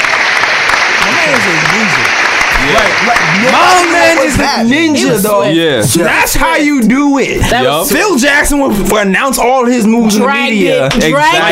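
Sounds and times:
applause, many hands clapping: 0.0s - 5.0s
speech: 2.8s - 11.4s.

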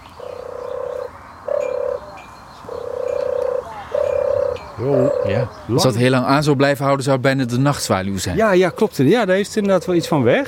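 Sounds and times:
dove's sonorous dreamy purring call: 0.0s - 5.9s, 8.4s - 10.4s
speech: 4.8s - 10.4s.

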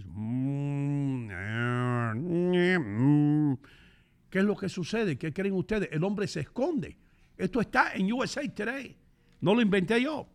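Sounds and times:
human voice imitating a cow mooing: 0.0s - 3.6s
speech: 4.3s - 10.3s.

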